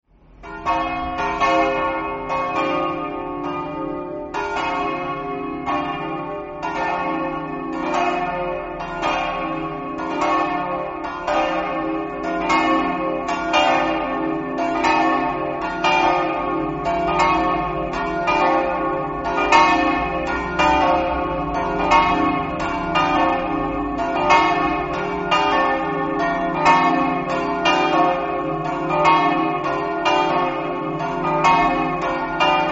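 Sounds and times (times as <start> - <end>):
church bells in Povoletto: 0.2 - 32.7.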